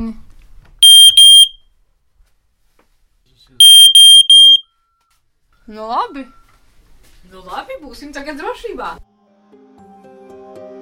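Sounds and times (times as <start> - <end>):
ceiling smoke detector beeping set off with its test button: 0.8 - 1.6, 3.6 - 4.7
speech: 5.7 - 6.4, 7.2 - 9.1.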